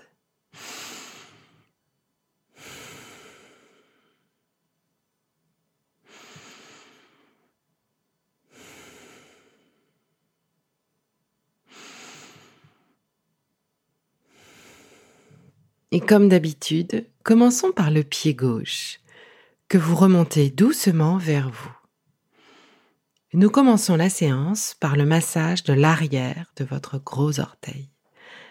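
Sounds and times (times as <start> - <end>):
person seated comfortably taking slow deep breaths for a relaxation session: 0.5 - 1.8, 2.5 - 4.6, 6.0 - 7.6, 8.4 - 10.4, 11.6 - 13.1, 14.2 - 15.7, 19.0 - 19.7, 22.2 - 23.1, 28.1 - 28.4
speech: 15.9 - 19.0, 19.7 - 21.8, 23.3 - 27.9.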